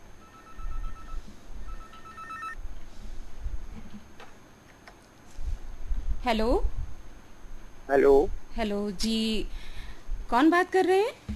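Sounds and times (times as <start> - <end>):
low hum: 0.0 - 11.3
telephone ringing for an incoming caller on a radio show: 0.2 - 2.6
speech: 6.2 - 6.8, 7.9 - 9.7, 10.3 - 11.3.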